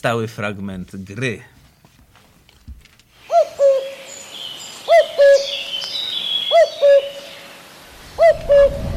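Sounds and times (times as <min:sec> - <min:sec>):
speech: 0:00.0 - 0:01.6
cuckoo calling two-note cu-koo: 0:03.2 - 0:08.9
faint birdsong chirping: 0:03.2 - 0:08.9.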